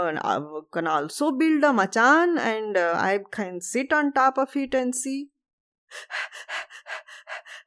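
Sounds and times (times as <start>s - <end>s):
speech: 0.0s - 5.3s, 5.9s - 6.6s
quick heavy panting breaths: 5.9s - 7.6s.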